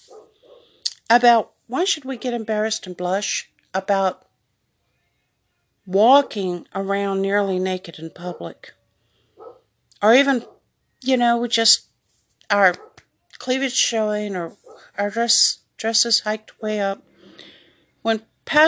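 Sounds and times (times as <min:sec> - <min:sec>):
dog barks outside: 0:00.0 - 0:00.7, 0:08.2 - 0:08.6, 0:09.4 - 0:09.7, 0:10.4 - 0:10.7, 0:12.8 - 0:13.0, 0:14.5 - 0:15.0
quiet hum: 0:00.0 - 0:18.6
speech: 0:01.1 - 0:04.2, 0:05.9 - 0:08.8, 0:10.0 - 0:11.9, 0:12.5 - 0:18.6.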